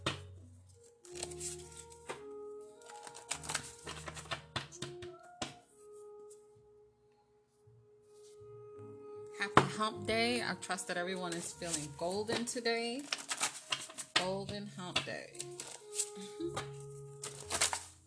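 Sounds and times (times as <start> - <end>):
deck of cards shuffled with papery riffles and taps: 1.0 - 4.9, 11.2 - 18.0
speech: 9.4 - 13.2, 14.2 - 16.8.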